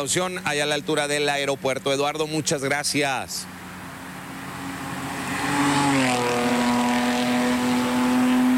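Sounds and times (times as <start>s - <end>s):
speech: 0.0s - 3.6s
high-revving sports car engine speeding past: 4.3s - 8.5s.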